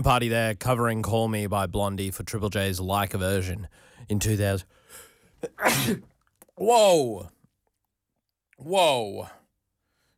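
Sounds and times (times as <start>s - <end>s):
speech: 0.0s - 7.4s, 8.6s - 9.4s
person sneezing: 5.4s - 6.1s.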